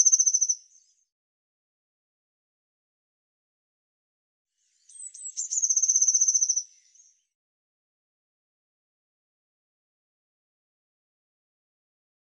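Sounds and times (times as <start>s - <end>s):
Eurasian blue tit high rapid trill: 0.0s - 1.0s, 4.7s - 7.4s.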